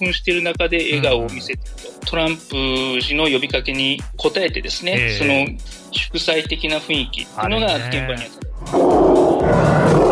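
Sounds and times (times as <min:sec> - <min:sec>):
speech: 0:00.0 - 0:09.8
lion cub roaring: 0:08.6 - 0:10.1.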